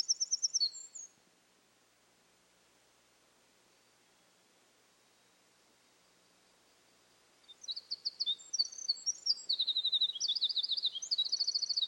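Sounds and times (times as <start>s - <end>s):
Eurasian wren song: 0.0s - 1.2s, 7.4s - 11.8s.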